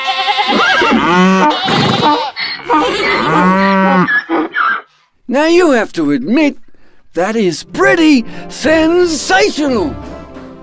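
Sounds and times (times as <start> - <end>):
cattle mooing: 0.0 - 4.8
horse neighing: 0.0 - 4.9
farm animals calling together in a chorus: 0.0 - 5.0
speech: 5.3 - 6.6, 7.2 - 10.1.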